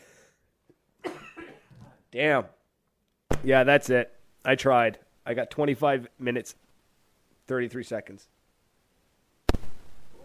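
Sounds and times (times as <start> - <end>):
man in a coughing fit: 1.0 - 2.0
speech: 2.1 - 2.6, 3.4 - 6.6, 7.5 - 8.4.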